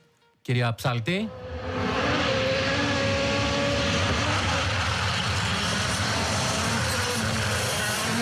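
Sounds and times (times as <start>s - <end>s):
speech: 0.5s - 1.4s
rally car engine roaring through a corner at the Acropolis Rally: 1.3s - 8.1s.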